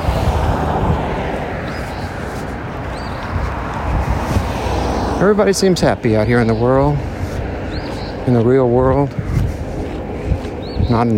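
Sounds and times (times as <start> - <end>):
street traffic of cars passing: 0.0 - 11.1
speech: 5.2 - 7.2, 8.2 - 9.4, 10.9 - 11.1.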